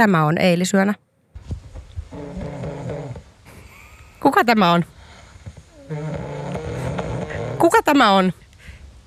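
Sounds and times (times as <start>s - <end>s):
speech: 0.0s - 1.1s, 4.2s - 5.0s, 5.9s - 6.3s, 7.6s - 8.4s
loud rasping snore from a sleeping person: 2.1s - 4.2s, 4.8s - 8.1s.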